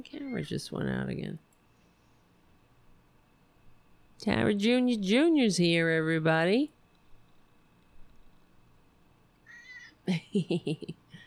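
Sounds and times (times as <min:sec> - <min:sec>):
speech: 0:00.0 - 0:01.5, 0:04.2 - 0:06.8, 0:10.1 - 0:11.0
male pet cat meowing in a studio: 0:09.5 - 0:09.9.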